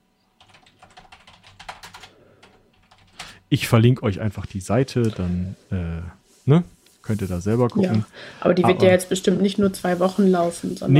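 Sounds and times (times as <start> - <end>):
rapid typing on a computer keyboard during an online search: 0.4 - 3.3
speech: 3.5 - 10.9.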